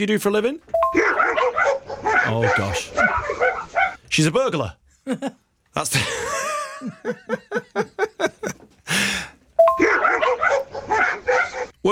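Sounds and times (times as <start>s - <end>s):
speech: 0.0s - 1.1s, 2.0s - 3.2s, 4.1s - 8.0s
dogs barking: 1.1s - 4.0s, 9.8s - 11.8s.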